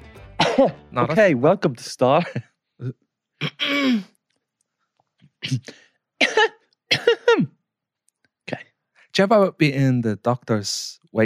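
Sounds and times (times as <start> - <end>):
speech: 0.6 - 4.1, 5.4 - 7.5, 9.2 - 11.2
rough throat clearing: 3.4 - 4.1, 5.4 - 7.6.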